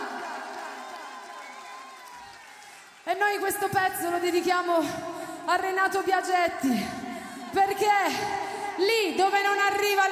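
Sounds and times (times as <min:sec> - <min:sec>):
crowd cheering and whooping: 0:00.0 - 0:03.0
speech: 0:03.2 - 0:10.0.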